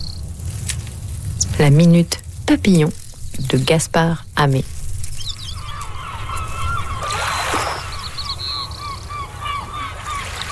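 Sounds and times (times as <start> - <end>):
steady low rumble: 0.0 - 9.4
speech: 1.6 - 4.7
seagulls of the family Laridae calling: 5.1 - 10.5.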